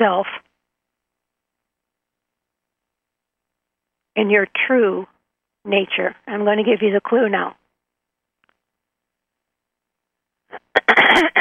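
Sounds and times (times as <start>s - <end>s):
speech: 0.0s - 0.4s, 4.2s - 7.6s
speaker at a seminar clearing throat: 10.6s - 11.3s.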